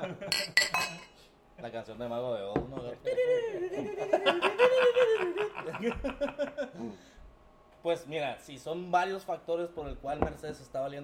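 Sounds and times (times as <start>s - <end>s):
laughter: 0.0s - 0.6s, 3.0s - 7.1s
glasses clinking in a toast: 0.3s - 1.2s
speech: 1.7s - 7.2s, 7.8s - 11.0s.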